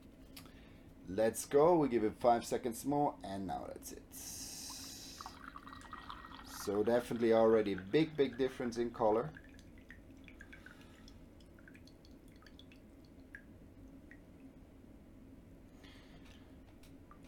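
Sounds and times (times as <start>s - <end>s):
speech: 1.1s - 4.4s, 6.6s - 9.4s
last drops of tea dripping from a teapot: 4.5s - 14.4s
brief splashy trickle of tea: 5.2s - 14.2s.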